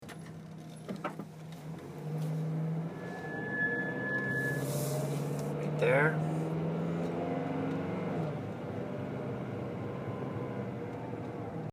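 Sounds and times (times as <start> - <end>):
noise when turning rdx: 0.0 - 11.7.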